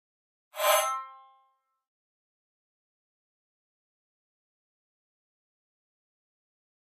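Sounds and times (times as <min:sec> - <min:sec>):
pop up high-frequency electronic scrape: 0:00.6 - 0:01.2.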